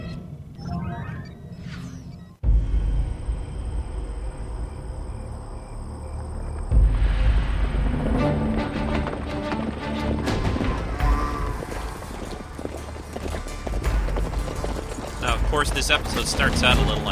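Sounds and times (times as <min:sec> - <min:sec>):
low rumbling background: 0:02.2 - 0:17.0
horse hooves clip-clopping down a street: 0:07.7 - 0:17.0
speech: 0:15.7 - 0:17.0.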